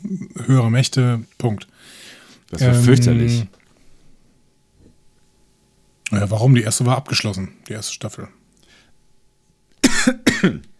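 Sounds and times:
speech: 0.1s - 3.6s, 6.1s - 8.4s, 10.0s - 10.7s
person coughing harshly after choking on something: 9.8s - 10.7s.

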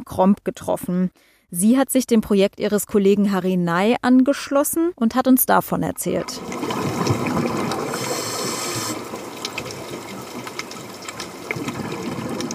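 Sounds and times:
speech: 0.0s - 7.6s
murky underwater bubbling and gurgling: 6.4s - 12.5s.

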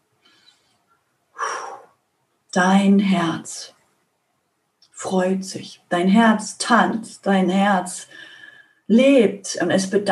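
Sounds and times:
person breathing in and out during a guided heart meditation: 1.4s - 1.9s, 8.1s - 8.8s
speech: 2.5s - 3.8s, 5.0s - 8.3s, 8.9s - 10.1s.

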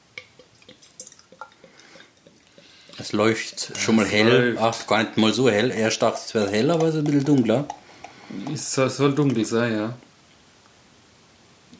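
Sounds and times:
beer fizzing and bubbling: 0.0s - 10.0s
beer pouring into a glass: 0.2s - 10.0s
speech: 3.0s - 10.1s.

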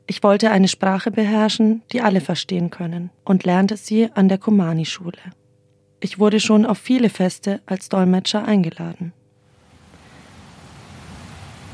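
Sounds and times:
speech: 0.1s - 5.4s, 6.0s - 9.2s
heavy rain: 9.5s - 11.7s.

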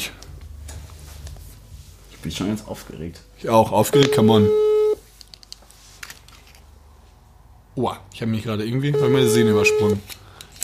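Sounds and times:
speech: 2.2s - 4.8s, 7.8s - 10.2s
short steady telephone tone: 3.8s - 5.0s, 9.0s - 10.0s.

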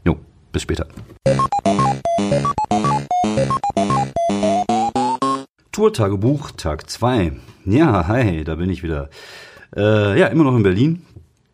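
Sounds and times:
speech: 0.1s - 1.5s, 2.2s - 2.6s, 5.8s - 11.1s
short bright podcast jingle of bouncy synthesized notes: 1.3s - 5.5s.

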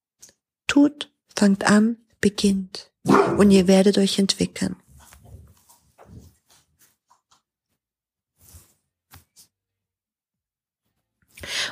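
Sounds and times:
speech: 0.7s - 4.8s
dog barking: 3.0s - 3.6s.

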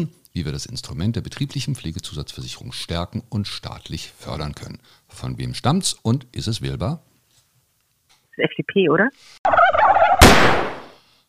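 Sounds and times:
speech: 0.0s - 7.1s, 8.4s - 9.6s
turkey gobbling: 9.5s - 10.3s.

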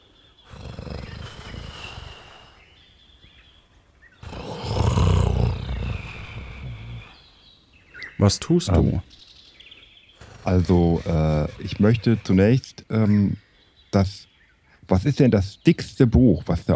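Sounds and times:
lion roaring inside a cave: 0.5s - 2.4s, 4.2s - 7.2s, 10.2s - 12.4s
speech: 8.2s - 9.2s, 10.4s - 14.3s, 14.9s - 16.7s.

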